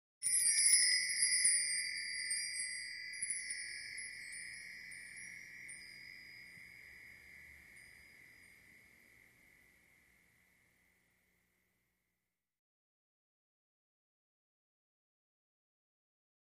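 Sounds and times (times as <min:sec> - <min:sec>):
light metal wind chime: 0:00.2 - 0:11.7.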